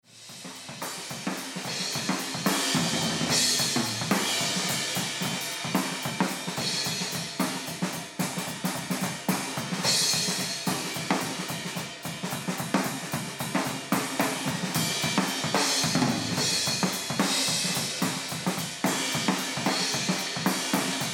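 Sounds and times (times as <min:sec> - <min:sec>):
drum kit: 0:00.0 - 0:21.1.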